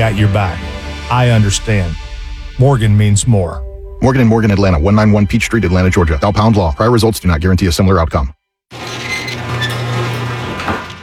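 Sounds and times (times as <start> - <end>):
speech: 0.0 - 2.0, 2.6 - 8.8
garage door opener grinding with motorized hum and rattling: 8.7 - 11.0.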